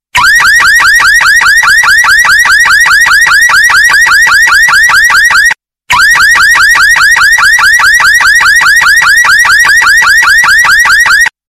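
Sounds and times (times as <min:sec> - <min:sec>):
car alarm ringtone: 0:00.2 - 0:11.4.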